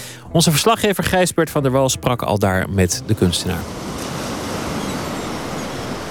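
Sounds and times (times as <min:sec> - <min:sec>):
speech: 0:00.3 - 0:04.0
surf breaking on the beach by the seaside boulevard in Scheveningen: 0:03.0 - 0:06.0.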